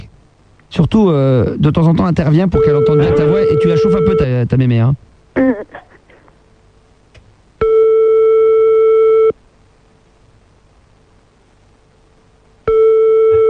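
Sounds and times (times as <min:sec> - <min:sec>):
faint continuous hum: 0:00.0 - 0:13.4
speech: 0:00.7 - 0:05.8
telephone tone beeps as a call fails to connect: 0:02.6 - 0:04.3, 0:12.7 - 0:13.4.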